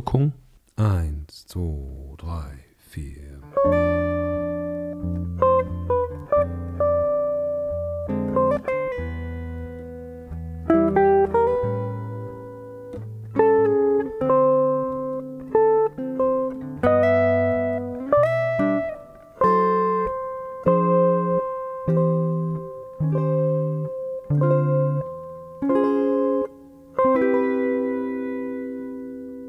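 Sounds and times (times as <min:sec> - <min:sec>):
speech: 0:00.1 - 0:04.2
jazz-style chord progression resolving on a C major 7 chord: 0:02.4 - 0:29.4.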